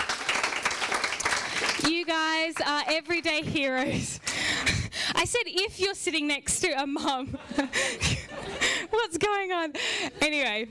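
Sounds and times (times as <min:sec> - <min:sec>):
audience applauding: 0:00.0 - 0:03.4
speech: 0:01.9 - 0:04.2, 0:05.2 - 0:10.6
laughter: 0:07.1 - 0:09.0.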